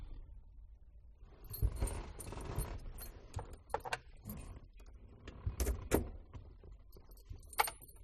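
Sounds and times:
driver pulling key out of car ignition inside car: 0:01.5 - 0:04.6, 0:07.0 - 0:08.0.

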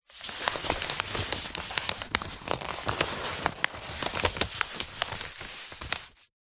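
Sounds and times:
five flat A4 paper sheets handled with a gentle rustle: 0:00.0 - 0:06.3.

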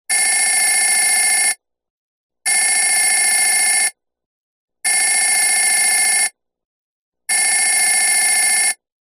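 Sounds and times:
telephone ringing: 0:00.1 - 0:01.6, 0:02.5 - 0:04.0, 0:04.9 - 0:06.4, 0:07.3 - 0:08.9.

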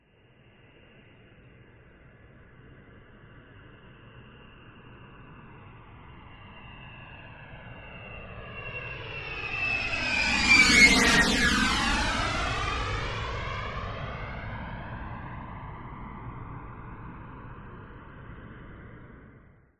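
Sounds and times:
military B-52 Stratofortress jet flying by: 0:05.6 - 0:19.4.

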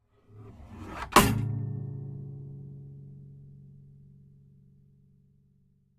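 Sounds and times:
acoustic guitar sliding against a wall: 0:00.2 - 0:01.7
acoustic guitar dropping: 0:00.9 - 0:03.3.

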